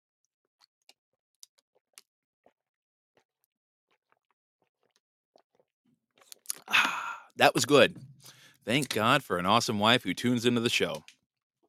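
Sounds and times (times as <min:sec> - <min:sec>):
man slurping water: 0:01.4 - 0:07.4
man sipping and swallowing water: 0:03.9 - 0:07.4
wet mouth clicks: 0:06.2 - 0:06.7
speech: 0:07.4 - 0:11.1.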